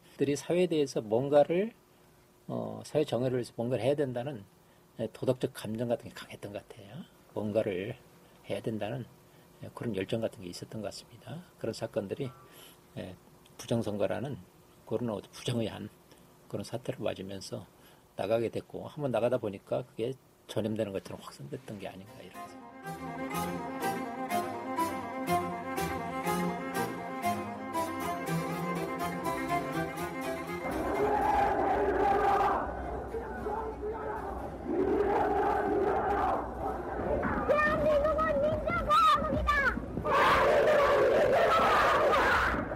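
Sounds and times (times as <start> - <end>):
speech: 0.2 - 1.8, 2.5 - 12.4, 13.0 - 23.6
tonal music: 22.0 - 34.7
crowd of young student protesters shouting and chanting in Korea's April Revolution: 30.5 - 42.6.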